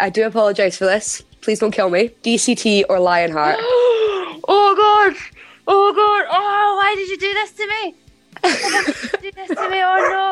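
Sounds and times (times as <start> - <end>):
speech: 0.0 - 10.3
laughter: 8.4 - 10.2
dog whimpering and yipping: 9.6 - 10.3.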